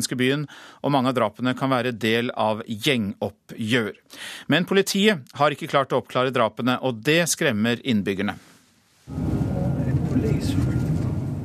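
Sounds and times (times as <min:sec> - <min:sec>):
speech: 0:00.0 - 0:08.5, 0:09.1 - 0:09.4
car engine low rumble: 0:09.1 - 0:11.4
road noise: 0:09.1 - 0:11.4.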